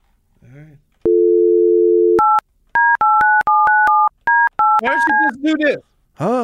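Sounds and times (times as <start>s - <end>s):
steady telephone dial tone while placing call: 1.0s - 5.3s
speech: 4.9s - 6.4s.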